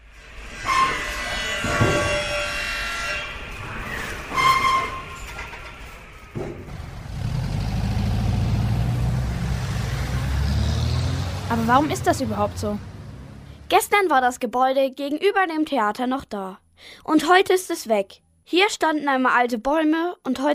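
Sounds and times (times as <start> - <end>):
busy road traffic rumbling: 1.6 - 14.0
vehicles passing: 6.3 - 14.0
speech: 11.6 - 12.9, 13.7 - 20.5.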